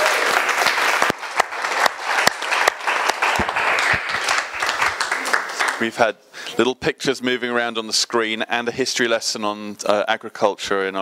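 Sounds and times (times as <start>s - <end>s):
audience applause: 0.0s - 6.0s
speech: 5.8s - 10.9s.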